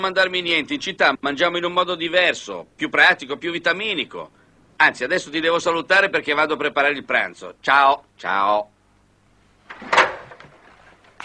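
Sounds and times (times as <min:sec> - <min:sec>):
speech: 0:00.0 - 0:08.7
wooden clunks of a folding table: 0:09.7 - 0:10.8.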